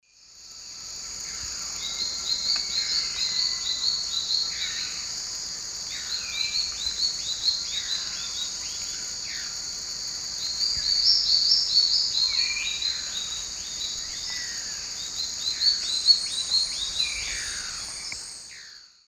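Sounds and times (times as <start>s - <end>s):
Hylophylax naevius duet in terra firme forest in South America: 1.2s - 5.2s, 5.8s - 19.0s.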